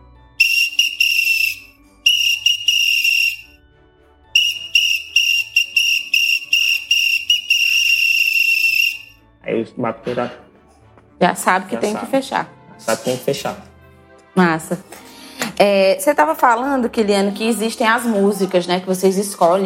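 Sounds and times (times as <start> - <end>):
shrill whistle blown to signal a group to finish a piece: 0.4 - 3.6, 4.4 - 9.2
speech: 9.6 - 10.5, 11.2 - 13.7, 14.4 - 14.9, 15.6 - 19.6.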